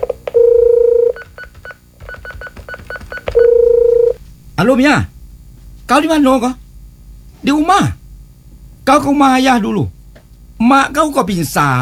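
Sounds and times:
short keypad beeps from dialing a phone call: 0.0s - 4.2s
steady phone tone: 0.0s - 4.2s
speech: 4.6s - 5.1s, 5.9s - 6.6s, 7.4s - 8.0s, 8.9s - 10.0s, 10.6s - 11.8s.

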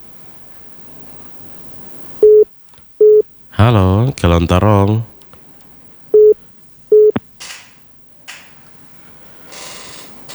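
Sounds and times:
unanswered phone call electronic ringing tones: 2.2s - 2.4s, 6.2s - 7.2s
speech: 3.6s - 5.1s.

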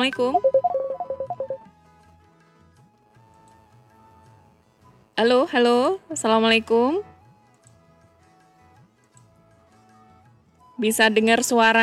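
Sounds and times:
speech: 0.0s - 0.8s, 5.2s - 7.1s, 10.8s - 11.8s
phone call ringing with quick electronic beeps: 0.0s - 1.7s.

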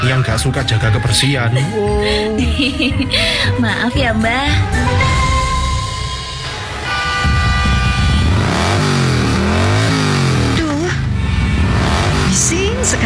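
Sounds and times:
speech: 0.0s - 5.3s
loud vehicle engine revving: 6.7s - 13.0s.

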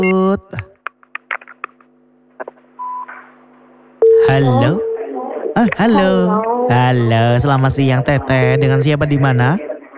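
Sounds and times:
faint constant hum: 0.0s - 9.9s
speech: 4.4s - 4.9s, 5.6s - 9.7s
steady telephone ringback tone: 8.4s - 9.3s.

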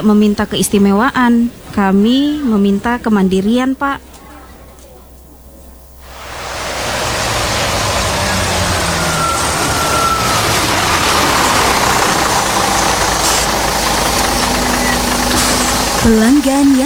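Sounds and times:
speech: 0.0s - 4.1s, 16.0s - 16.8s
city bus engine idling with a steady rumble: 0.0s - 16.8s
broad wash of hiss: 4.1s - 16.8s.

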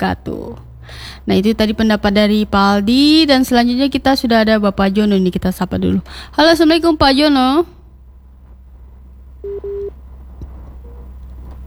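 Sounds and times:
speech: 0.0s - 7.8s
low hum: 0.0s - 11.6s
phone line tones after dropped call: 9.4s - 10.0s.

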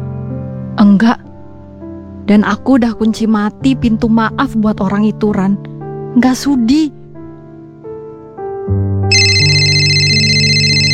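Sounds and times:
speech: 0.8s - 1.2s, 2.3s - 7.0s
electronic phone ringtone for an unknown-number call after 1 a.m.: 9.1s - 10.9s.

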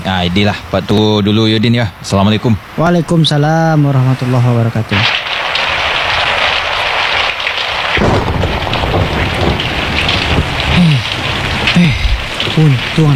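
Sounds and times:
heavy rain: 0.0s - 13.1s
speech: 0.1s - 5.2s, 12.6s - 13.1s
deep thunder rolling and rumbling: 5.0s - 13.1s.

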